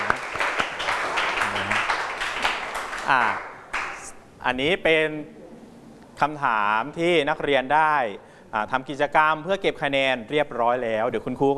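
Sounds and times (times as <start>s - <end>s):
room full of students applauding in a classroom: 0.0s - 4.1s
speech: 3.1s - 3.5s, 4.4s - 5.4s, 6.2s - 11.5s.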